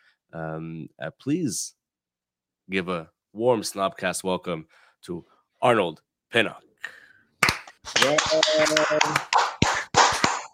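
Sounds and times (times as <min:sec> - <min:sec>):
speech: 0:00.3 - 0:01.8, 0:02.7 - 0:07.0, 0:07.9 - 0:09.4
single person clapping hands: 0:07.4 - 0:10.5.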